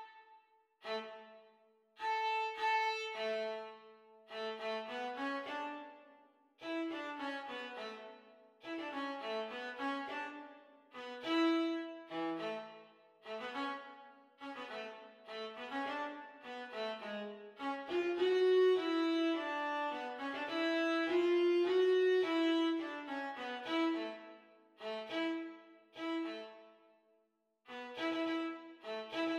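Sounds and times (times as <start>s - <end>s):
viola duet: 0.8s - 6.1s, 6.6s - 26.7s, 27.7s - 29.3s.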